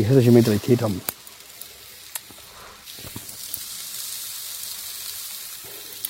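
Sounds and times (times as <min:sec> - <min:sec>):
speech: 0:00.0 - 0:01.1
food sizzling on a hot grill: 0:00.0 - 0:06.0
sharp pops and crackles of grilling food: 0:00.4 - 0:04.2.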